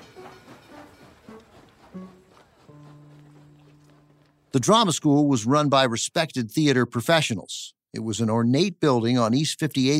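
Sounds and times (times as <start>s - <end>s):
train rumbling on rails: 0.0s - 4.9s
speech: 4.6s - 9.9s.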